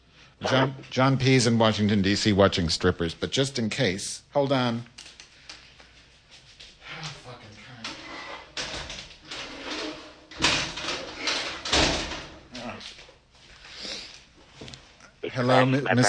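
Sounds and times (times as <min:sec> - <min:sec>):
speech: 0:00.4 - 0:04.9, 0:15.4 - 0:16.0
closet door sliding shut with loud thumps: 0:07.9 - 0:12.5.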